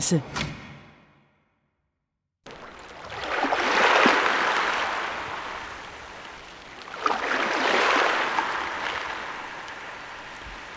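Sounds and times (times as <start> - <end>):
speech: 0.0 - 0.5
ocean waves: 2.4 - 10.7.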